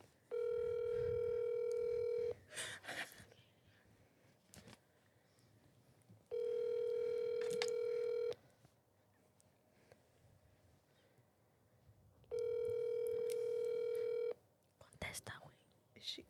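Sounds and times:
phone ringback tones of an unanswered call: 0.3 - 2.4, 6.3 - 8.4, 12.3 - 14.4.

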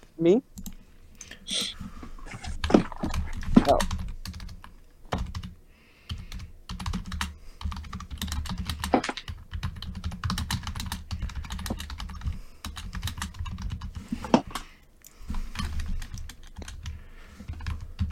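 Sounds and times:
speech: 0.2 - 0.5, 1.5 - 1.9
typing on a computer keyboard: 3.1 - 14.7, 15.3 - 18.1.

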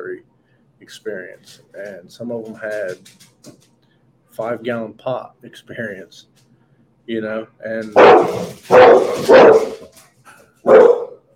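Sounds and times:
speech: 0.9 - 3.7, 4.4 - 6.4, 7.1 - 9.7
pit bull barking deeply: 7.9 - 9.9, 10.6 - 11.3.

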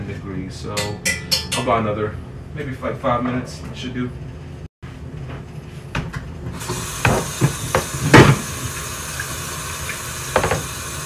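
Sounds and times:
speech: 0.2 - 4.3
water running from a tap during hand washing: 6.6 - 11.0.

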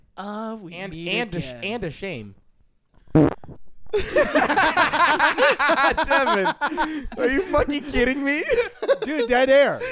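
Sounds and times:
speech: 0.2 - 2.4, 3.9 - 9.8
short buzzy fart: 3.1 - 3.7
laughter: 4.0 - 9.8.

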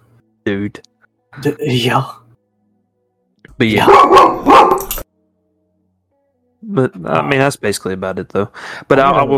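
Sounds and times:
speech: 0.4 - 2.2, 3.6 - 4.8, 6.7 - 9.3
dog barking: 3.8 - 5.0.

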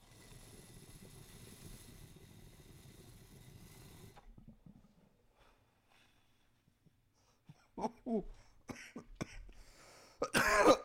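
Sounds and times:
speech: 7.8 - 8.4
person coughing: 10.2 - 10.8.

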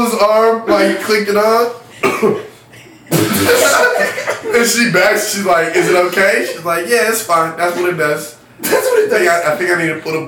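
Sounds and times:
speech: 0.1 - 2.5, 3.4 - 10.2
person coughing: 2.0 - 4.0
laughter: 3.2 - 6.9, 8.6 - 9.4.

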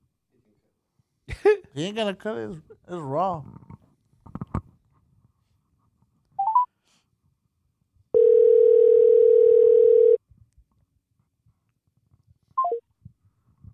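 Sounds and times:
speech: 1.4 - 3.6
steady electronic phone tone: 8.2 - 10.2.

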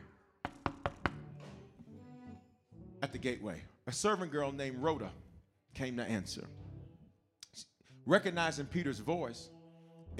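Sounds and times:
firm knocks on a wooden door: 0.4 - 1.3
speech: 3.1 - 6.6, 7.6 - 9.6.

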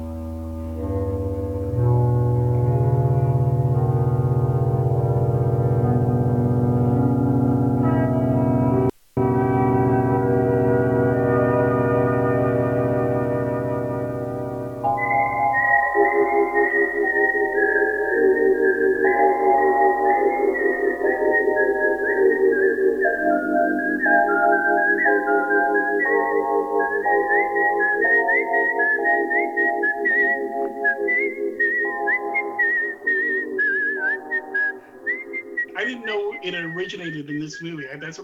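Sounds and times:
sustained swelling instrumental chord: 0.0 - 22.2
pulsing musical accompaniment: 0.0 - 28.4
man whistling a film-theme melody coming down the road: 11.0 - 37.9
speech: 36.8 - 38.2.

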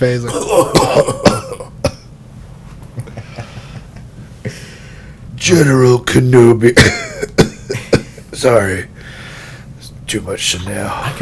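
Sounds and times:
speech: 0.0 - 1.3, 5.5 - 7.0, 8.4 - 8.9, 10.1 - 11.1
voice imitating a raspy exaggerated coughing fit: 0.3 - 2.1, 6.8 - 8.2.

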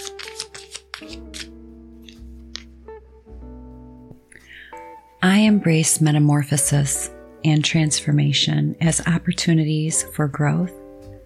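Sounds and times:
deck of cards being shuffled: 0.0 - 2.8
speech: 5.2 - 10.8.

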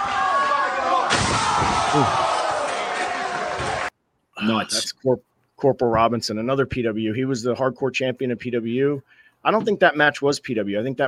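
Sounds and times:
crowd roaring: 0.0 - 3.9
wrestler's head slamming into a chair in a hardcore wrestling match: 1.1 - 2.1
speech: 1.9 - 2.2, 4.5 - 11.0.

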